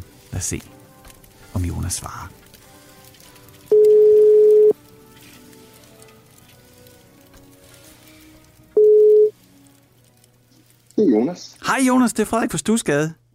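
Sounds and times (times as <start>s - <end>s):
faint crackly telephone line hiss: 0.0s - 11.7s
speech: 0.3s - 0.8s, 1.6s - 2.4s, 11.0s - 13.2s
telephone ringback tone: 3.7s - 4.8s, 8.8s - 9.3s.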